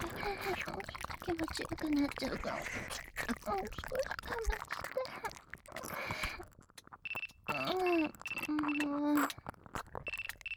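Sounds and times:
speech: 0:00.2 - 0:05.4, 0:07.6 - 0:09.3
phone ringtone of repeating electronic beeps: 0:10.1 - 0:10.5.

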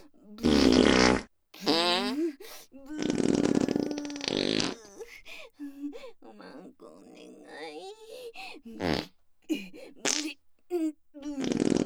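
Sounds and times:
farts: 0:00.4 - 0:02.1, 0:03.0 - 0:04.8, 0:11.4 - 0:11.8.

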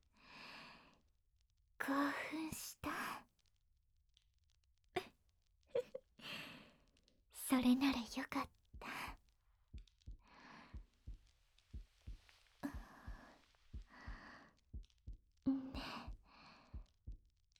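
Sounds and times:
speech: 0:01.8 - 0:02.8, 0:07.6 - 0:08.6
quick steady heartbeat thumping in paired beats: 0:08.8 - 0:17.3.

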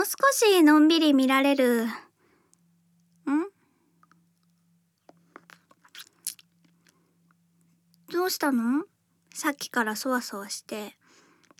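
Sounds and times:
speech: 0:00.1 - 0:02.0, 0:03.3 - 0:03.5, 0:08.1 - 0:11.0
short hummed vocal sound: 0:03.2 - 0:03.6
small crunches of hard candy being eaten: 0:04.0 - 0:07.0, 0:11.4 - 0:11.5
wet mouth clicks while eating hard candy: 0:05.1 - 0:07.0.

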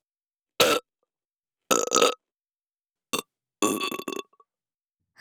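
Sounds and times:
loud burps: 0:00.6 - 0:00.8, 0:01.7 - 0:02.2, 0:03.6 - 0:04.3.

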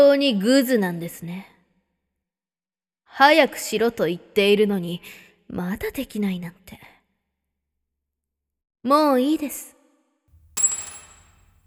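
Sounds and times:
speech: 0:00.0 - 0:01.5, 0:03.1 - 0:06.9, 0:08.8 - 0:09.8
key dropping on floor: 0:10.3 - 0:11.6.

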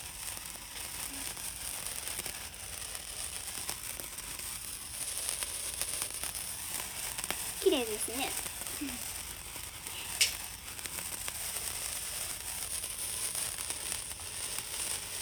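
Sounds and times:
handheld firework sputtering and crackling: 0:00.0 - 0:15.2
speech: 0:07.8 - 0:09.1
handheld firework fizzing hiss: 0:09.9 - 0:10.4.

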